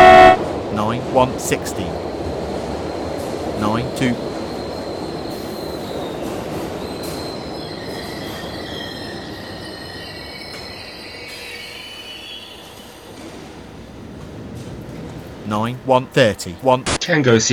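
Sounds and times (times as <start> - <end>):
short louder tonal burst: 0.0 - 0.4
moving train rumbling heard from the driver's cab: 0.0 - 17.5
speech: 1.2 - 2.1, 3.6 - 4.3, 15.5 - 17.5
thin high train wheel squeals: 3.6 - 13.7.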